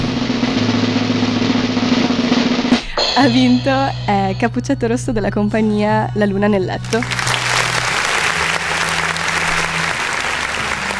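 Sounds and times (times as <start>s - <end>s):
low hum: 0.0s - 8.0s
speech: 3.2s - 7.3s
sizable crowd applauding: 6.8s - 10.9s.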